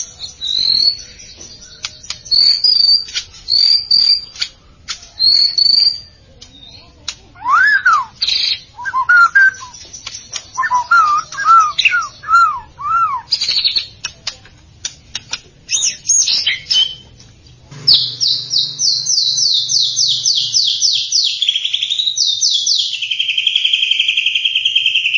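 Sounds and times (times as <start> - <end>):
White-rumped shama song of slurred whistled notes and sharp clicks: 0.2 - 17.1, 17.9 - 25.1.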